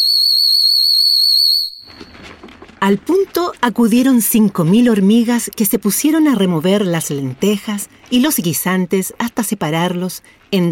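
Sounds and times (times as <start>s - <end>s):
shepherd's whistle blown in a single shrill high tone: 0.0s - 2.1s
speech: 0.2s - 10.6s.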